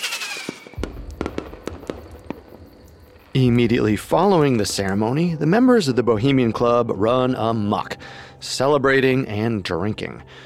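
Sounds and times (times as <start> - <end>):
fireworks exploding above a lake at a midsummer ceremony: 0.0 - 4.9
speech: 3.4 - 10.4.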